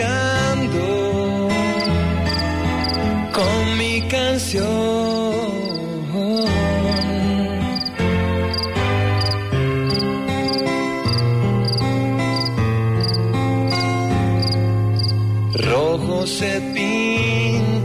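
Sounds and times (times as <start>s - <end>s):
full loud musical backing with sliding melodic lines: 0.0s - 17.8s
crickets chirping at nightfall: 1.7s - 3.1s, 5.0s - 15.6s, 16.5s - 17.2s.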